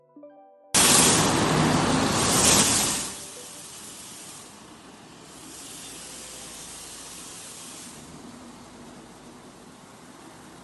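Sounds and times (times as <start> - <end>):
hissing rush of water spray: 0.8 - 8.1.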